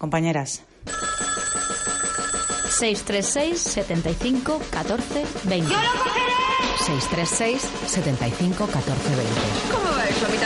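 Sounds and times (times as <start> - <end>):
speech: 0.0 - 1.0, 2.7 - 10.4
telephone bell ringing with a rapid metallic trill: 0.8 - 3.3.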